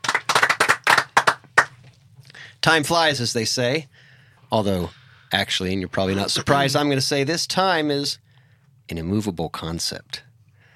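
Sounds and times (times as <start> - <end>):
hand clapping: 0.0 - 1.8
speech: 2.6 - 8.2, 8.9 - 10.3.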